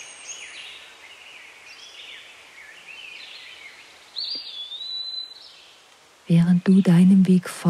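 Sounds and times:
soft continuous birdsong in a forest: 0.0 - 7.3
bright whistled bird call: 4.2 - 5.4
speech: 6.3 - 7.6.

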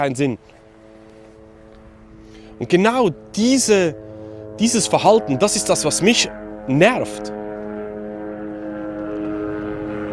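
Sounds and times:
speech: 0.0 - 0.6, 2.6 - 4.0, 4.6 - 7.4
helicopter droning overhead: 0.0 - 10.1.

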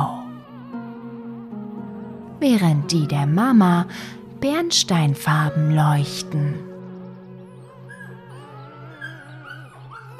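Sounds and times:
speech: 2.4 - 6.7
puppy from a young litter whimpering and squeaking: 7.5 - 10.1.

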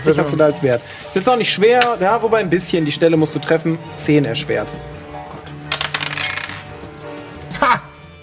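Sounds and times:
speech: 0.0 - 5.0
dice rolling on a table: 5.7 - 6.7.

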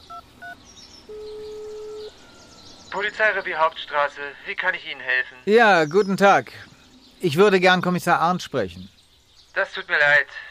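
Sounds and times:
mobile phone keypad beeps: 0.0 - 2.1
speech: 0.4 - 1.6, 2.9 - 9.0, 9.6 - 10.4.

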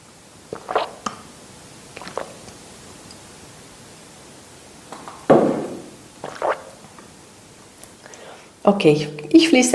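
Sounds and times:
faint steady hiss: 0.0 - 9.7
person drinking water with sips and swallows: 0.5 - 1.1, 2.0 - 2.6, 6.2 - 6.9
speech: 8.7 - 9.7.

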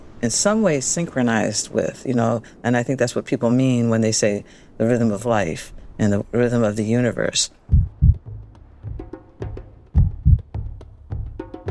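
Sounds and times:
speech: 0.2 - 7.8
heartbeat: 7.7 - 11.4.

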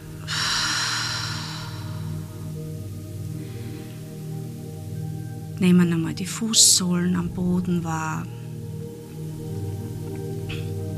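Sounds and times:
soft steady low drone: 0.0 - 10.9
deep exhale: 0.2 - 2.6
speech: 5.6 - 8.6.

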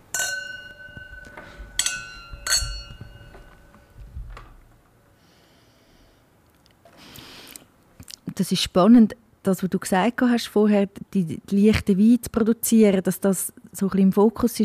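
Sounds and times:
wine glasses clinking in a toast: 0.0 - 4.0
speech: 8.4 - 14.6.

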